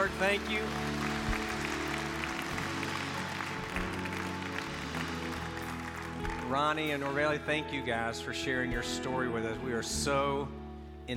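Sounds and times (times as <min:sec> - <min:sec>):
speech: 0:00.0 - 0:01.0, 0:06.5 - 0:11.1
audience applauding: 0:00.0 - 0:07.2.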